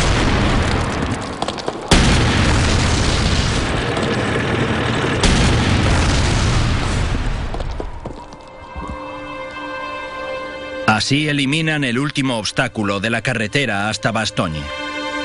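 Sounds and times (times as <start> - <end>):
tank cannon firing at a bunker: 0.0 - 8.2
continuous roaring rumble: 0.0 - 9.4
speech: 11.0 - 14.8.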